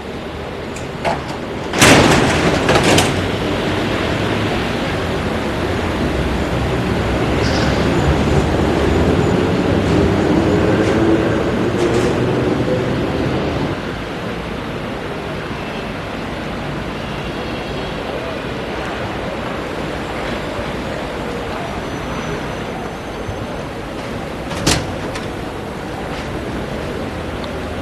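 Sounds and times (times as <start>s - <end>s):
Paris metro train rumbling: 0.0s - 27.8s
sharp clanks and rattles: 0.7s - 3.6s, 24.0s - 25.5s.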